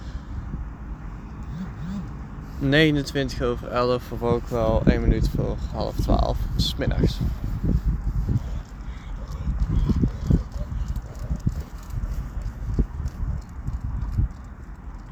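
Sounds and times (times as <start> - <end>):
speech: 2.6 - 7.5
dogs' paws pattering outdoors at a school's smoking area: 7.1 - 15.1
woman's footsteps outdoors at a school's smoking area: 7.3 - 15.1.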